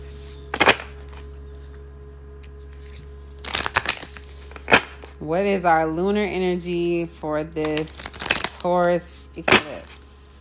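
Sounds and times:
tarot cards drawn from a deck rustling: 0.0 - 5.2, 7.6 - 10.0
quiet hum: 0.0 - 10.3
speech: 5.2 - 8.0, 8.6 - 10.0.

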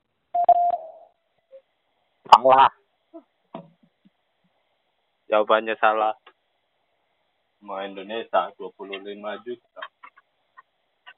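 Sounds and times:
short electronic quiz answer-prompt tone: 0.4 - 1.0
speech: 2.4 - 2.8, 5.3 - 6.3, 7.6 - 9.9.

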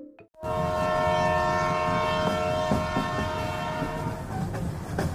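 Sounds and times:
sustained horn-like tones: 0.4 - 4.3
train rolling along on rails: 0.5 - 5.1.

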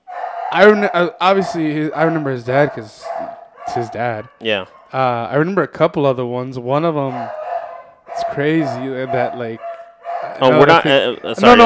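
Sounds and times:
dog barking, yipping and whining in the background: 0.0 - 5.0, 7.0 - 10.7
speech: 0.5 - 3.1, 3.7 - 7.4, 8.3 - 9.7, 10.4 - 11.6.

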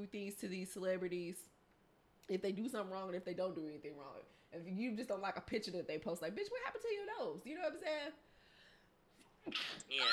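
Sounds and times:
speech: 0.0 - 1.6, 2.3 - 8.3, 9.4 - 10.1
quiet inhale: 8.2 - 9.2
person sneezing: 9.5 - 10.1.

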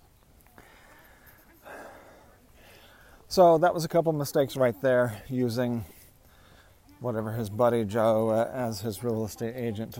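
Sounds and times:
heavy labored breathing of a person walking a dog up a hill: 0.6 - 3.3, 5.8 - 6.9
speech: 3.3 - 6.0, 7.0 - 9.9.

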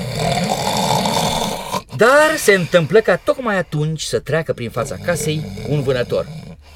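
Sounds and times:
loud rasping snoring: 0.0 - 2.0, 4.6 - 6.7
speech: 2.0 - 6.4.

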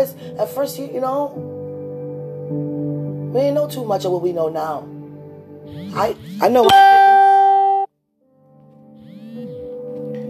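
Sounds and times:
speech: 0.0 - 1.6, 2.5 - 2.7, 3.3 - 4.9, 5.7 - 7.2
phone notification chime: 6.6 - 7.9.

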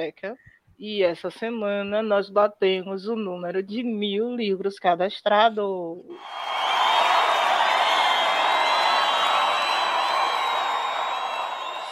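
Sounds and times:
speech: 0.0 - 6.7
dense crowd applause and cheering: 6.2 - 11.8
high whoops or whistles from the crowd: 6.2 - 11.8.

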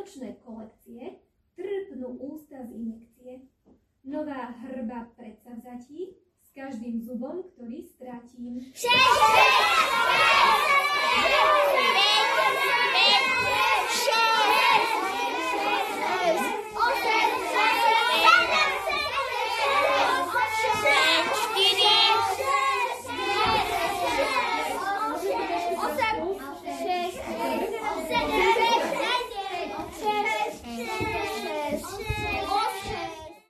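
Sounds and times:
speech: 0.1 - 1.2, 2.1 - 3.4
crowd of children shouting and chattering at an event: 8.8 - 33.4.

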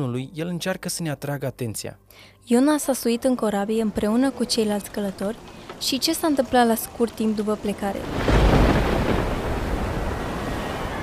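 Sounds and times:
speech: 0.0 - 8.6
loud deep rumble of thunder: 3.3 - 11.0
stormy roar: 4.2 - 11.0.

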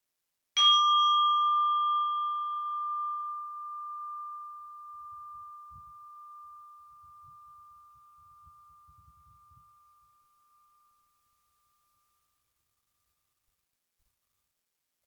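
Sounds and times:
single meditation bell struck and ringing: 0.6 - 11.3.

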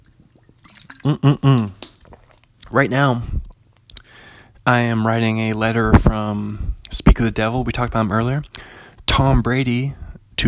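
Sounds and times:
wet sipping and gulping water from a water bottle: 0.0 - 4.2
speech: 1.0 - 1.8, 2.7 - 3.4, 4.7 - 10.4.

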